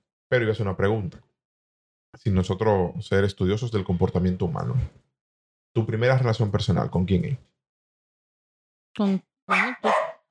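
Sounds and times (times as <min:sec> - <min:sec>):
speech: 0:00.3 - 0:01.3, 0:02.1 - 0:05.1, 0:05.8 - 0:07.5, 0:09.0 - 0:10.0
pet dogs barking at home: 0:09.5 - 0:10.2.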